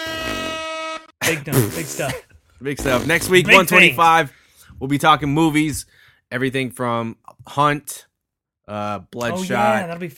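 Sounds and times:
loud sustained air horn blast: 0.0s - 1.2s
speech: 1.3s - 8.1s, 8.7s - 10.1s.

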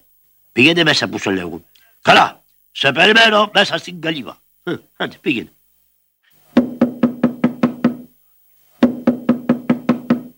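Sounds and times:
speech: 0.6s - 5.6s
knocking on a door: 6.6s - 8.1s, 8.8s - 10.3s.

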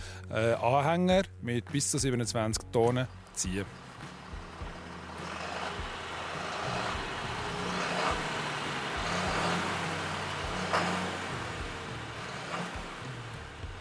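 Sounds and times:
speech: 0.3s - 3.9s
heavy agricultural truck engine running: 2.7s - 13.7s
maize baling machine continuous mechanical roar: 3.1s - 13.7s
mechanical clanks: 3.2s - 13.7s.

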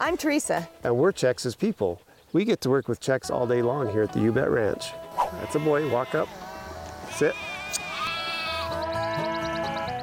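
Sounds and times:
speech: 0.0s - 6.4s, 7.1s - 7.9s
sheep bleating on a ranch: 3.6s - 10.0s.

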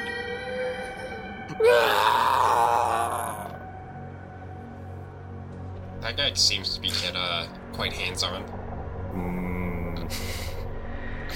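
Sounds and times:
low steady drone: 0.0s - 11.3s
monster wailing shrill and strained: 1.5s - 3.6s
speech: 6.2s - 8.6s.

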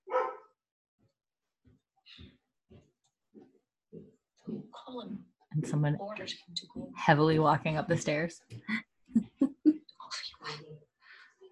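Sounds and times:
dog barking: 0.0s - 0.6s
speech: 5.0s - 8.8s.

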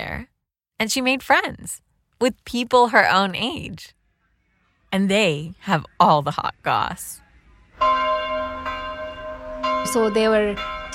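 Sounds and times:
speech: 0.0s - 4.0s, 4.9s - 7.2s, 7.8s - 8.4s, 9.8s - 10.9s
church bell ringing from a bell tower: 7.8s - 10.9s.

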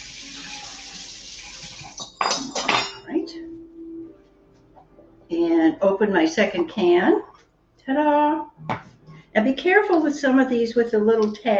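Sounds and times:
tap water running over forks being rinsed: 0.0s - 2.6s
speech: 5.8s - 7.3s, 7.9s - 8.8s, 9.4s - 11.5s.

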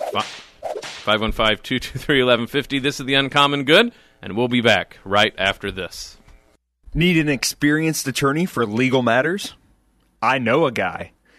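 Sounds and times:
whip crack sound effect: 0.0s - 1.2s
speech: 0.1s - 6.2s, 6.9s - 9.6s, 10.2s - 11.2s.

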